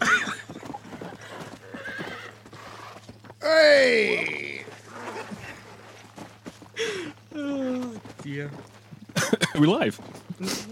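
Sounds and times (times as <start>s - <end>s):
horse hooves clip-clopping: 0.0s - 3.4s, 4.1s - 10.7s
faint low hum: 0.0s - 10.7s
horse whinnying: 1.1s - 5.3s
speech: 3.4s - 4.4s, 8.3s - 8.7s, 9.6s - 10.7s.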